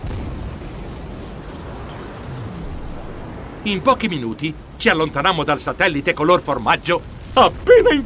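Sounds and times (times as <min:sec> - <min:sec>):
spaceship engines roaring at takeoff from a small fake asteroid: 0:01.8 - 0:03.9
speech: 0:03.6 - 0:08.0.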